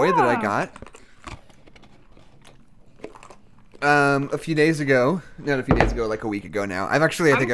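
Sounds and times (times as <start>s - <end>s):
speech: 0.0s - 0.9s, 3.8s - 7.5s
loud chewing of pita bread: 0.1s - 4.7s.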